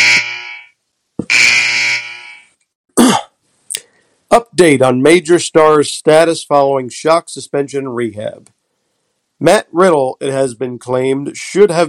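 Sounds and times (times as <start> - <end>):
harsh electronic buzzer blaring: 0.0 - 2.6
speech: 4.3 - 8.6, 9.4 - 11.8.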